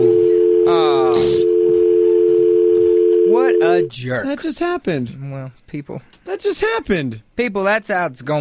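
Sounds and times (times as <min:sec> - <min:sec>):
telephone dial tone after a caller hangs up: 0:00.0 - 0:03.9
speech: 0:03.6 - 0:08.3.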